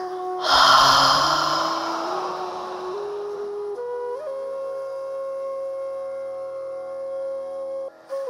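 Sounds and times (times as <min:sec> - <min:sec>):
long breathy deep exhale through an open mouth with a voiced ha: 0:00.4 - 0:03.9.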